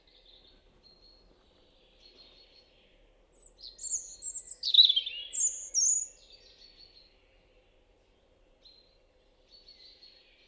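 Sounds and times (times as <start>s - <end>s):
European robin singing: 3.4s - 6.6s.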